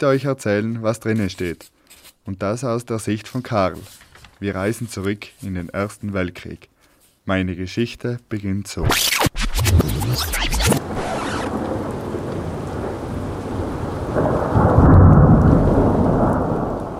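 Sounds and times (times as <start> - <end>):
speech: 0.0 - 10.6
sharp crackling thunderclap: 9.7 - 16.9
steady heavy rain hissing: 10.3 - 16.9
deep rolling rumble of thunder: 10.8 - 16.9.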